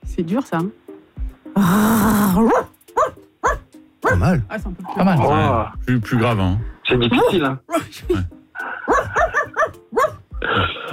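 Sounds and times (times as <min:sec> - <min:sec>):
speech: 0:00.2 - 0:00.8, 0:01.6 - 0:02.7, 0:04.1 - 0:08.4
German shepherd dog barking: 0:02.4 - 0:04.3, 0:08.8 - 0:10.3.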